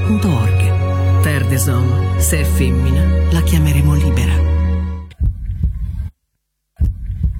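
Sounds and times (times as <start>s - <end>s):
speech: 0.1s - 4.5s
deep heartbeat thumping: 5.1s - 7.3s.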